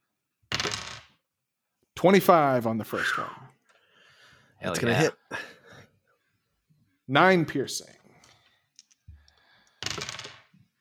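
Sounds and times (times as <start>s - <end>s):
two twenty-sided dice clattering onto a hard surface: 0.5s - 1.2s, 9.7s - 10.6s
speech: 2.0s - 3.4s, 4.6s - 5.5s, 7.1s - 8.0s.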